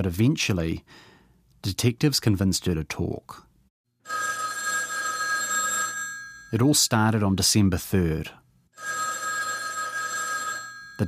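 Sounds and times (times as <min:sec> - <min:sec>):
speech: 0:00.0 - 0:03.5, 0:06.5 - 0:09.0
old-style telephone bell ringing: 0:04.0 - 0:06.6, 0:08.8 - 0:11.0.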